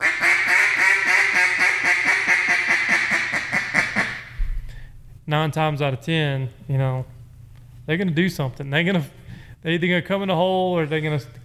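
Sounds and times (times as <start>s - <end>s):
duck call blowing a boss hen quack: 0.0s - 4.4s
speech: 5.3s - 7.1s, 7.9s - 11.4s.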